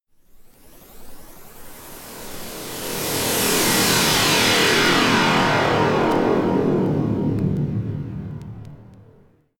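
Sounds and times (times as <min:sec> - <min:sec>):
alien beam: 0:03.1 - 0:09.3.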